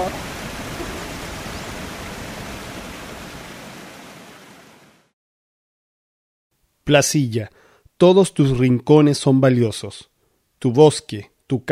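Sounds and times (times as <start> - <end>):
waterfall roar: 0.0 - 5.0
speech: 6.9 - 11.7.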